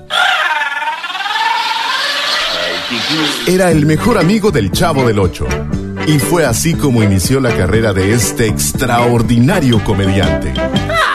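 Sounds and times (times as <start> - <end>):
exaggerated childlike crying wail: 0.0 - 3.5, 10.9 - 11.1
speech: 3.0 - 10.9.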